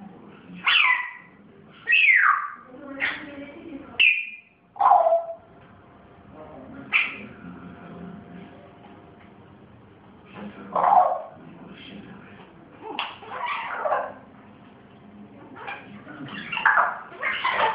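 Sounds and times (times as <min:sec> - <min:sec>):
pet grey parrot whistling and squawking: 0:00.6 - 0:03.2, 0:04.0 - 0:05.5, 0:13.0 - 0:14.2, 0:15.6 - 0:17.7.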